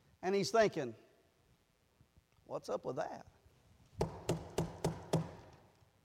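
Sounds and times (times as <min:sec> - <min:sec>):
speech: 0:00.2 - 0:01.0, 0:02.5 - 0:03.4
knocking on a door: 0:04.0 - 0:05.5.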